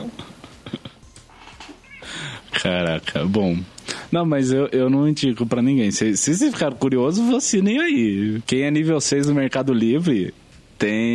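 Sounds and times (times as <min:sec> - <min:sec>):
laughter: 0:00.0 - 0:01.0
female domestic cat meowing softly: 0:01.7 - 0:02.2
speech: 0:02.6 - 0:11.1.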